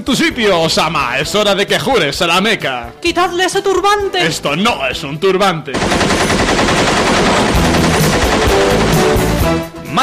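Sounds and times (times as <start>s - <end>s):
speech: 0.0s - 7.5s, 8.6s - 10.0s
rapid automatic gunfire in a film trailer: 5.8s - 9.6s.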